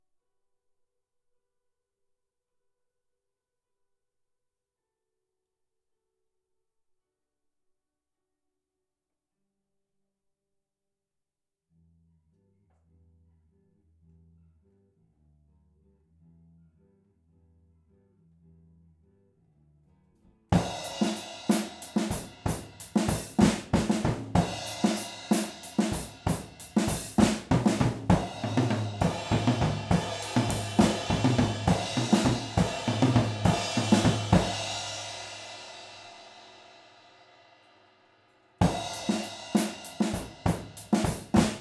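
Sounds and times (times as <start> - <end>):
drums recorded with stereo overhead microphones: 20.6 - 37.5, 38.6 - 41.6.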